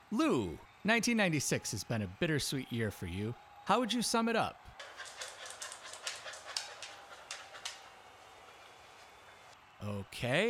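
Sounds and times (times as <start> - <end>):
speech: 0.1 - 5.0, 9.8 - 10.4
dog panting: 4.8 - 9.4.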